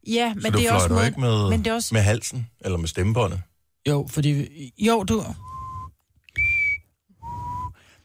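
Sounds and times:
speech: 0.0 - 5.5
short whistled notes from lips: 5.4 - 7.9.

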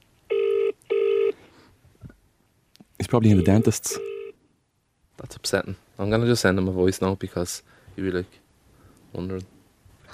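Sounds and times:
electronic ringback tones from an outgoing phone call: 0.3 - 1.4, 3.3 - 4.4
speech: 3.1 - 4.1, 5.2 - 8.4, 9.1 - 10.1.

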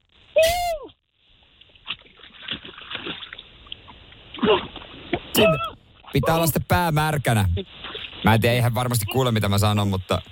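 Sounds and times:
Baltic Sea water sloshing and churning: 1.5 - 6.5, 7.6 - 8.3
person jumping into the Baltic Sea splash: 1.8 - 3.5, 4.3 - 5.7
speech: 5.4 - 10.3.

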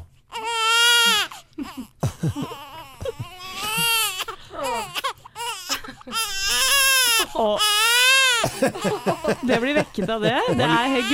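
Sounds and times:
baby crying: 0.3 - 11.1
laughter: 1.0 - 4.9, 5.6 - 6.7, 8.4 - 11.1
speech: 2.2 - 2.5, 8.6 - 11.1.

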